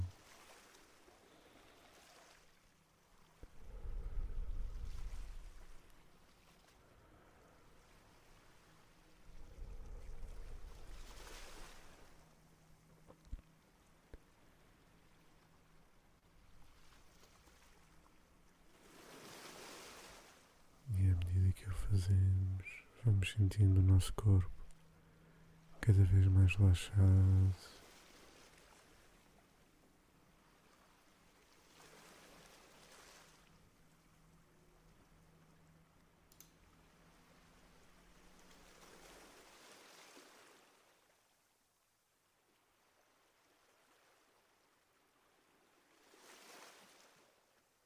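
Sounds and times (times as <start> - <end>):
soft ocean waves breaking on the shore: 0.0 - 13.0, 14.2 - 20.9, 26.8 - 29.5, 30.3 - 34.0, 36.8 - 41.0, 45.7 - 47.3
speech: 21.9 - 24.6, 25.9 - 27.8.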